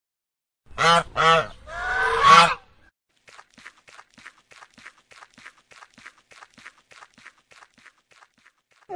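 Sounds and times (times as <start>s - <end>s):
goose honking: 0.8s - 2.6s.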